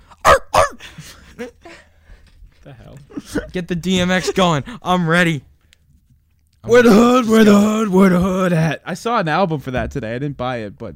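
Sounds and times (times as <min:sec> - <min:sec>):
dog giving loud gruff barks: 0:00.2 - 0:00.8
speech: 0:03.2 - 0:05.5, 0:06.7 - 0:10.9.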